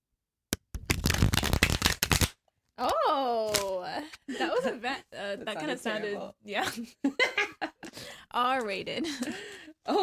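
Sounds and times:
deck of tarot cards being shuffled: 0.6 - 2.4, 3.4 - 3.7
speech: 4.2 - 7.4, 8.4 - 10.0.

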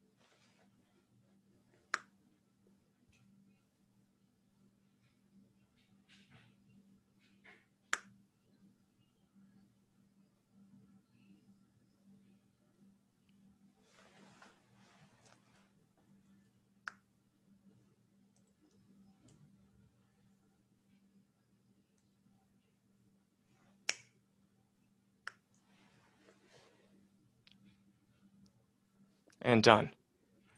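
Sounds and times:
faint low hum: 0.0 - 30.5
finger snaps: 1.9 - 2.2, 7.9 - 8.2, 16.8 - 17.1, 23.8 - 24.2, 25.2 - 25.6
speech: 29.4 - 30.0.

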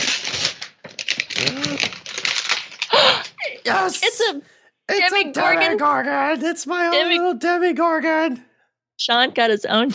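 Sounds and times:
wrapping paper being torn open: 0.0 - 2.9
speech: 3.6 - 9.9.

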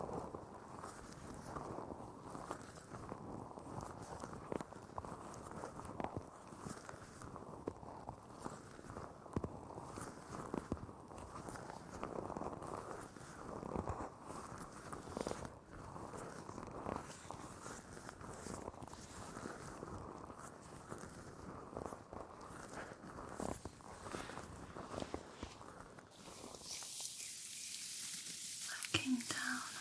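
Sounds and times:
body massage rubbing and patting: 0.0 - 29.7
bright hissing spray-like sound: 26.2 - 29.7.

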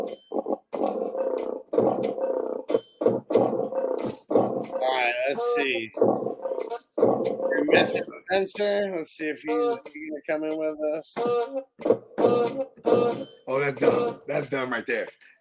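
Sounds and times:
speech: 0.0 - 0.2, 5.3 - 15.3
tiger roaring in loud rough bursts: 0.0 - 5.2, 5.9 - 8.1.

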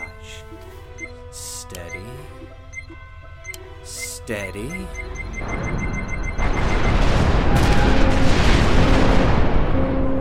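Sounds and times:
speech: 4.3 - 6.0
ship cannon fire roar: 6.4 - 10.1.

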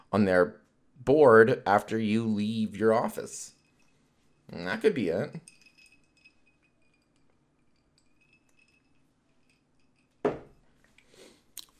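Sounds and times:
room hum with faint high tones: 0.0 - 11.7
speech: 0.1 - 3.6, 4.5 - 5.6
ice clinking in a glass: 5.4 - 10.4.

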